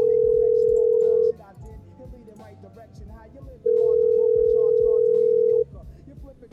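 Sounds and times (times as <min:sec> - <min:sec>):
long loud telephone beeps while a call goes through: 0:00.0 - 0:01.4, 0:03.7 - 0:05.7.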